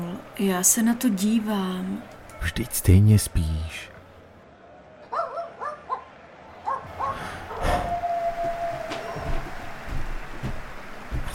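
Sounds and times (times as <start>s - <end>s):
speech: 0.2s - 3.9s
dog barking in short yappy bursts: 5.1s - 7.9s
higher whining tone: 7.5s - 10.0s.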